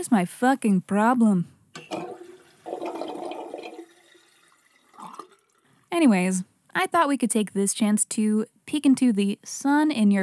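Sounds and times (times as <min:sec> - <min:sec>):
speech: 0:00.0 - 0:01.6, 0:06.0 - 0:10.2
toilet flushing: 0:01.8 - 0:05.7
gurgling water from a toilet flush: 0:01.9 - 0:05.8.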